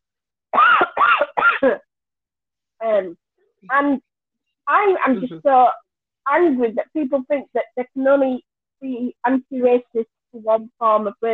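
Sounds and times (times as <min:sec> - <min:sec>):
rough coughs: 0:00.6 - 0:01.8
speech: 0:01.6 - 0:01.9, 0:02.8 - 0:04.1, 0:04.7 - 0:11.3.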